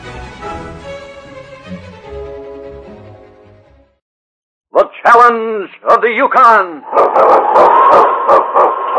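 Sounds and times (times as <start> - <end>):
speech: 5.3 - 8.4
sled dog howling: 6.9 - 8.9.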